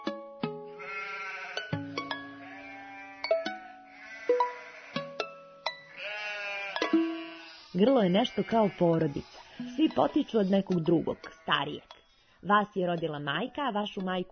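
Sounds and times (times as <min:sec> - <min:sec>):
flock of sheep bleating: 0:00.7 - 0:11.8
speech: 0:07.8 - 0:14.3.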